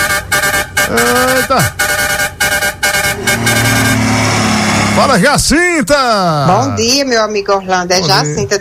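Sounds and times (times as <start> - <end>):
truck horn honking: 0.0 - 5.4
speech: 0.9 - 1.8, 5.0 - 8.5.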